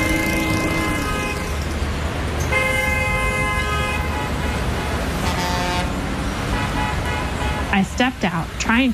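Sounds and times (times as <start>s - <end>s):
car and motorcycle horns honking: 0.0s - 1.8s, 2.4s - 7.8s
busy road traffic with cars and motorcycles rumbling: 0.0s - 8.9s
speech: 7.8s - 8.9s.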